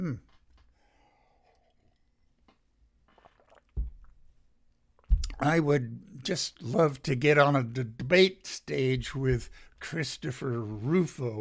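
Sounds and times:
speech: 0:00.0 - 0:00.3, 0:05.4 - 0:11.3
person sipping a drink: 0:00.8 - 0:04.2.

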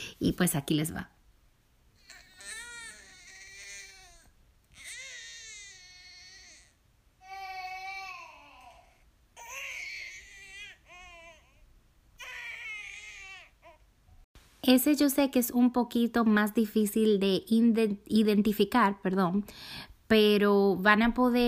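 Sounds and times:
speech: 0:00.2 - 0:01.2, 0:14.8 - 0:21.4
infant crying hard and desperately: 0:02.0 - 0:13.9.

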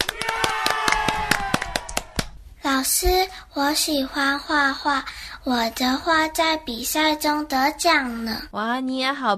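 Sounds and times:
children clapping for a classmate: 0:00.0 - 0:02.4
speech: 0:02.8 - 0:09.3.

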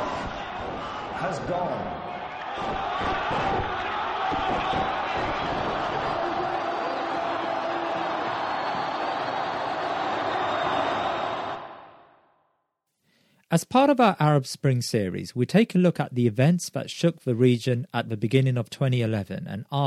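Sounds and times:
huge crowd cheering and shouting in celebration: 0:00.0 - 0:12.1
speech: 0:01.2 - 0:02.0, 0:02.6 - 0:06.7, 0:13.6 - 0:19.8.

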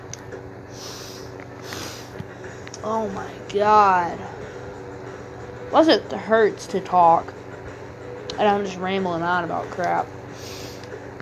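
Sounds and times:
person blowing nose: 0:00.7 - 0:02.2
speech: 0:02.8 - 0:04.4, 0:05.7 - 0:07.4, 0:08.4 - 0:10.5.

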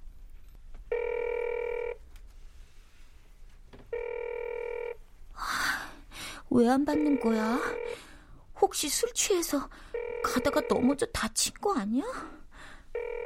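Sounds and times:
mobile phone ringback tone: 0:00.9 - 0:02.0, 0:03.9 - 0:05.0, 0:06.9 - 0:08.1, 0:10.0 - 0:11.0, 0:13.0 - 0:13.2
rustling noise: 0:02.0 - 0:03.9
speech: 0:06.5 - 0:08.0, 0:08.7 - 0:12.4.

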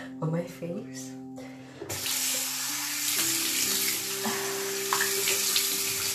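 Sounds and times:
speech: 0:00.2 - 0:01.9
faucet water running into a sink: 0:01.9 - 0:06.1.

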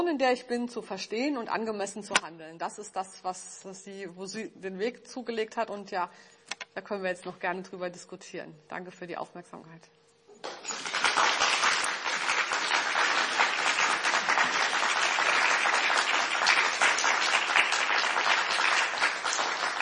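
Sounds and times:
speech: 0:00.1 - 0:10.0
audience applause after a talk: 0:10.4 - 0:19.7.

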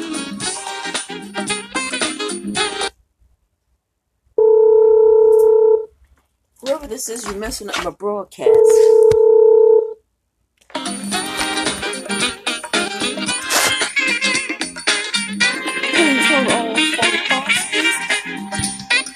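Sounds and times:
full busy music: 0:00.0 - 0:02.9, 0:10.7 - 0:19.1
loud steady telephone dialing tone interrupting a broadcast: 0:04.4 - 0:05.9, 0:08.5 - 0:10.0
speech: 0:06.9 - 0:09.3.

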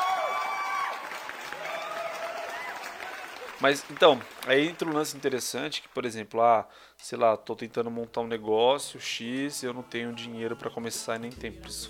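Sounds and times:
people cheering: 0:00.0 - 0:05.4
crowd clapping: 0:00.0 - 0:06.0
speech: 0:03.6 - 0:11.8.

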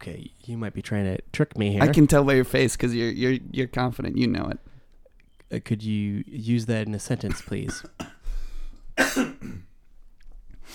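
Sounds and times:
speech: 0:00.0 - 0:04.7, 0:05.5 - 0:08.1
cough: 0:07.2 - 0:08.2, 0:09.0 - 0:09.8
throat clearing: 0:09.0 - 0:09.7.

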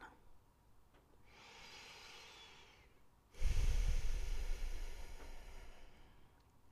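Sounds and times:
person breathing close to the microphone: 0:01.3 - 0:06.4.

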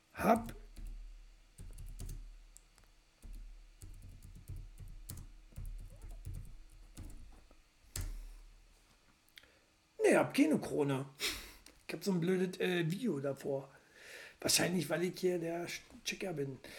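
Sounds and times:
speech: 0:00.2 - 0:00.5, 0:10.2 - 0:13.8, 0:14.4 - 0:16.7
soft typing of a chat message on a computer keyboard: 0:00.3 - 0:01.0, 0:01.6 - 0:02.3, 0:03.2 - 0:08.2.

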